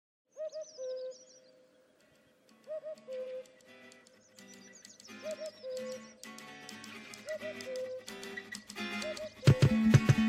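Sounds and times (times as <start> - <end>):
cuckoo hollow two-note call: 2.6 - 3.7, 5.1 - 6.2, 7.1 - 8.1, 8.8 - 10.1.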